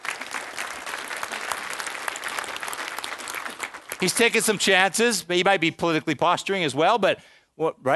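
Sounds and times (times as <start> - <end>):
crowd applauding: 0.0 - 5.0
speech: 4.0 - 7.9.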